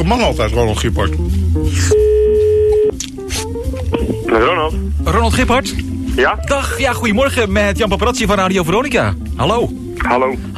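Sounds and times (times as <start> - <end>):
speech: 0.0 - 2.1, 3.9 - 10.5
ringback tone of an outgoing telephone call: 1.9 - 2.9.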